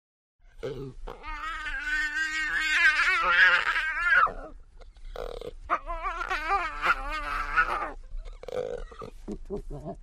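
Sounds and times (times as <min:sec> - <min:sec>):
jaguar cub wailing: 0:01.1 - 0:04.6, 0:05.6 - 0:08.0
jaguar cub snorting and snuffling: 0:04.8 - 0:05.7, 0:07.7 - 0:10.0.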